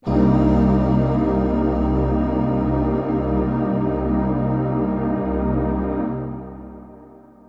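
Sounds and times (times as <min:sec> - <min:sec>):
ambient synth pad in C: 0:00.0 - 0:07.4.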